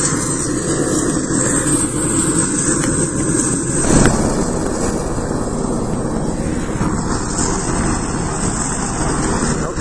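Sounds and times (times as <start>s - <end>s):
Black Hawk helicopter engines roaring and whining: 0.0s - 9.7s
wind buffeting the microphone: 2.8s - 9.7s.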